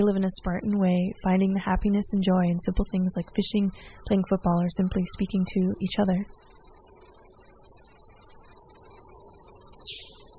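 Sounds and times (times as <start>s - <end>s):
speech: 0.0s - 6.4s
high-pitched insect drone in Amazon rainforest: 0.0s - 10.3s.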